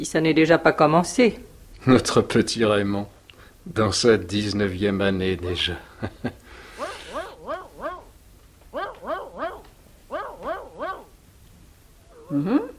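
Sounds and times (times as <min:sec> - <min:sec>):
speech: 0:00.0 - 0:06.4, 0:12.3 - 0:12.7
dog barking: 0:06.7 - 0:11.2
footsteps approaching: 0:08.4 - 0:11.6.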